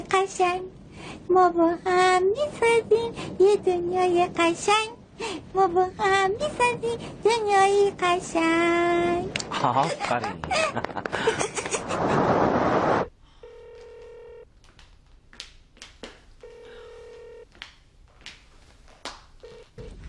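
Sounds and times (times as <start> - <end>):
speech: 0.1 - 12.2
laughter: 9.5 - 12.0
loud hissy noise: 11.6 - 13.1
telephone ringing with steady electronic tones: 13.4 - 14.5, 16.4 - 17.5, 19.4 - 20.0.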